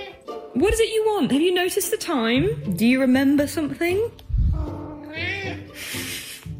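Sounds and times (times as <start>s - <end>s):
speech: 0.6s - 4.2s
cat meowing demanding dinner: 4.4s - 5.8s
breathy hissing noise: 5.7s - 6.5s.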